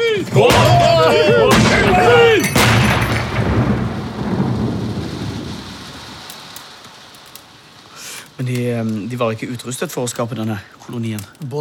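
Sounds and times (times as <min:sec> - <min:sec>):
speech: 0:00.2 - 0:00.9, 0:09.1 - 0:11.6
cannon salute blasts: 0:00.3 - 0:06.8
rumbling echo: 0:00.4 - 0:06.8.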